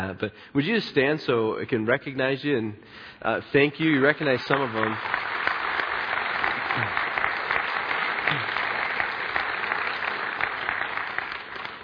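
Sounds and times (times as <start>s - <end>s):
speech: 0.0s - 5.5s, 6.8s - 7.0s, 8.3s - 8.5s
audience applauding in a church: 4.0s - 11.8s.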